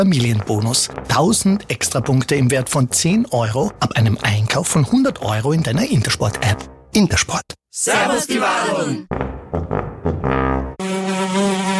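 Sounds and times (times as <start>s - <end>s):
speech: 0.0s - 9.8s
fly buzzing: 10.8s - 11.7s.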